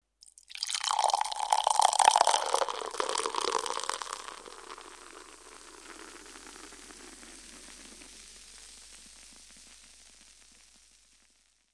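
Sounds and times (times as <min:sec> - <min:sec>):
beer pouring into a glass: 0:00.2 - 0:07.0.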